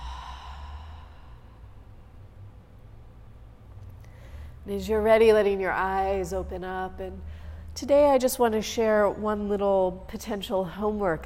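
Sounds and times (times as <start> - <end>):
slow deep breath in and out closing a guided meditation: 0.0 - 2.5, 4.0 - 4.6, 7.2 - 7.8
low steady hum: 0.0 - 11.2
speech: 4.7 - 11.2.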